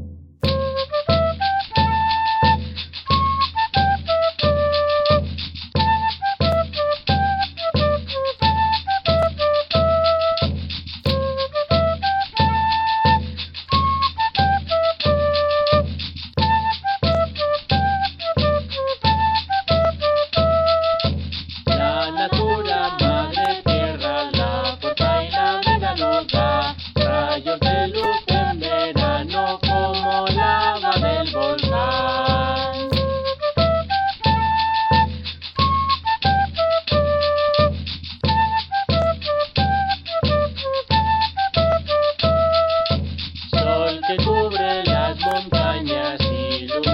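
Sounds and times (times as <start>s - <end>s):
Andean music: 0.4s - 10.5s, 11.1s - 15.9s, 16.5s - 21.1s, 21.7s - 37.7s, 38.3s - 42.9s, 43.5s - 46.9s.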